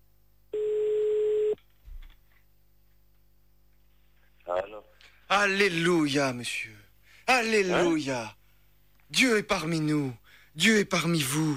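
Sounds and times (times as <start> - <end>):
telephone ringing tone as a call is placed: 0.6 - 1.6
speech: 5.4 - 8.4, 9.1 - 11.5.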